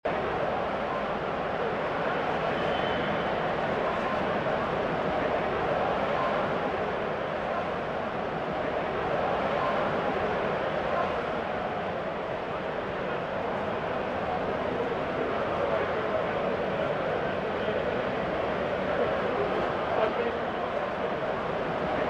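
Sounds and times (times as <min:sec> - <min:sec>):
crowd ambience: 0:00.0 - 0:22.0.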